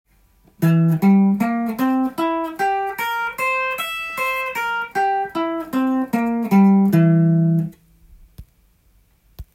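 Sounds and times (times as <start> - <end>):
C7 chord on guitar: 0.6 - 7.8.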